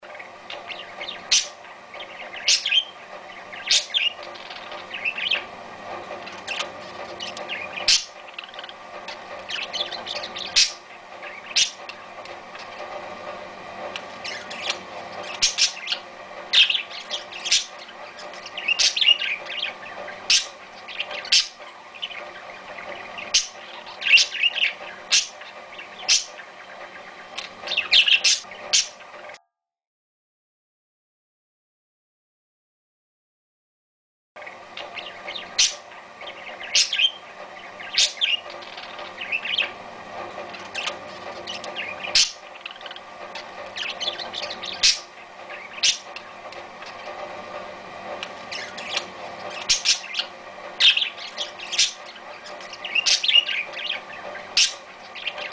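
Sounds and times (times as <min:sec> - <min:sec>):
parakeet calling: 0:00.1 - 0:29.3, 0:34.4 - 0:55.5.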